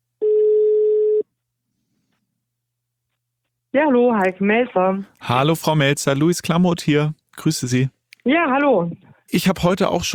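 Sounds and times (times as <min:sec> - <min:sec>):
ringback tone of an outgoing telephone call: 0:00.2 - 0:01.2
speech: 0:03.8 - 0:10.1.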